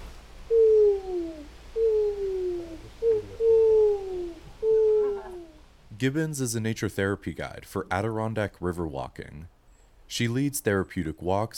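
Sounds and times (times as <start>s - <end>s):
human voice of a forest walk guide imitating an owl hoot: 0.5s - 5.6s
speech: 6.0s - 11.5s.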